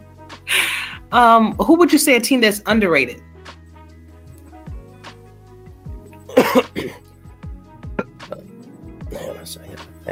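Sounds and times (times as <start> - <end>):
speech: 1.1 - 3.3
person coughing roughly: 6.3 - 7.0.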